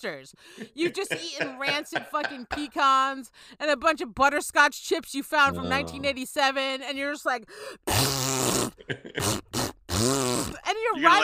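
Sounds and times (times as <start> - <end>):
speech: 0.0 - 11.2
laughter: 0.6 - 2.8, 5.5 - 6.1, 8.8 - 9.3
person blowing a loud raspberry imitating a fart: 5.5 - 6.1, 7.8 - 10.7.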